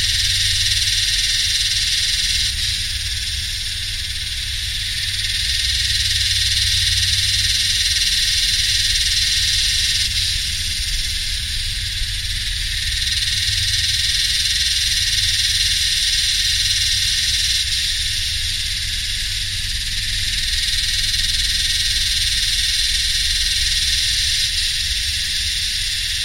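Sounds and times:
yellowbelly cicada Psaltoda harrisii chorus singing in the heat: 0.0s - 26.2s.

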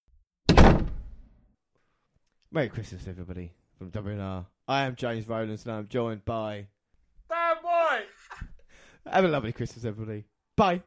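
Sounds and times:
door slamming shut: 0.5s - 1.2s
speech: 2.5s - 6.8s, 9.0s - 10.8s.

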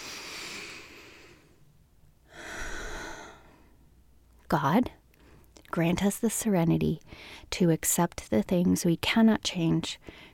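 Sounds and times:
person taking a deep breath: 0.0s - 1.6s, 2.2s - 3.8s
speech: 4.5s - 5.0s, 5.7s - 10.3s.

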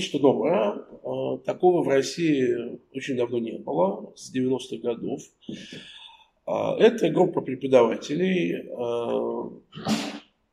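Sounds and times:
speech: 0.0s - 10.2s
person sneezing: 9.8s - 10.4s.

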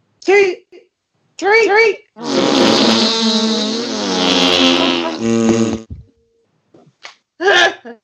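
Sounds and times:
speech: 0.3s - 0.6s, 1.4s - 3.6s
several voices blowing raspberries imitating farts: 2.2s - 6.0s.

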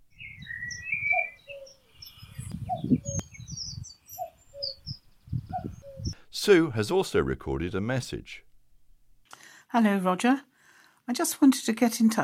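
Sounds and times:
low wind-like rumble: 0.0s - 6.2s
birds chirping: 0.0s - 6.6s
common cuckoo calling its two-note song in spring: 0.1s - 6.2s
speech: 6.4s - 8.5s, 9.7s - 10.5s, 11.1s - 12.2s.

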